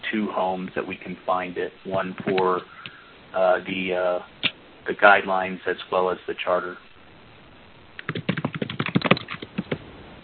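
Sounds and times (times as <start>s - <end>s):
speech: 0.1s - 6.8s
typing on a computer keyboard: 8.0s - 9.8s.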